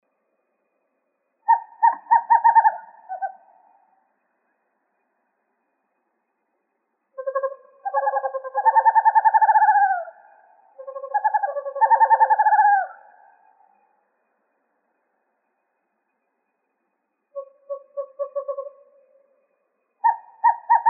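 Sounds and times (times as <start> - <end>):
Western screech owl hoot trills in Arizona: 1.4 - 4.1, 7.1 - 14.0, 17.3 - 20.8.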